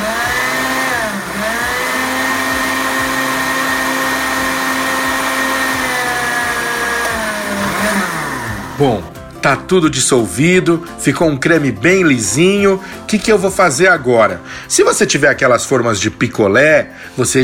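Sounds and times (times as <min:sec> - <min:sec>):
blender blending dates and carob: 0:00.0 - 0:09.3
speech: 0:08.8 - 0:17.4.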